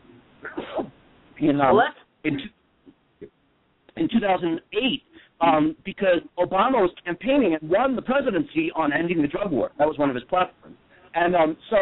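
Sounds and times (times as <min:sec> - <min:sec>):
person sneezing: 0:00.4 - 0:01.0
speech: 0:01.4 - 0:02.6, 0:04.0 - 0:11.8.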